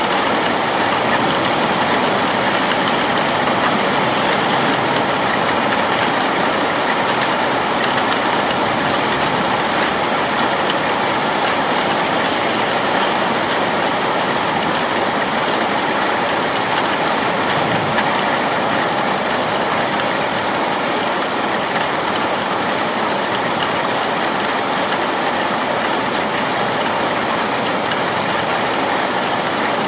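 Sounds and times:
rain falling: 0:00.0 - 0:29.8.

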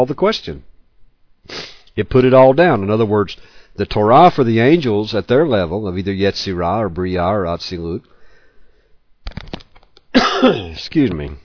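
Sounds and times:
speech: 0:00.0 - 0:00.7, 0:01.4 - 0:08.1, 0:09.2 - 0:11.4
person coughing and sputtering after choking on a cough drop: 0:10.1 - 0:10.8.

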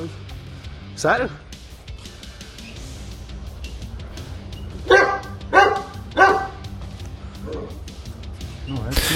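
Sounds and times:
speech: 0:01.0 - 0:01.4
dog barking: 0:04.8 - 0:06.7, 0:07.5 - 0:07.8.

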